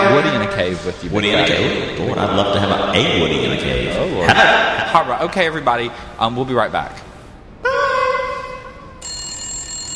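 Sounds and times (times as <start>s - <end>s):
speech: 0.5s - 7.8s
electronic phone ringtone: 9.0s - 9.9s.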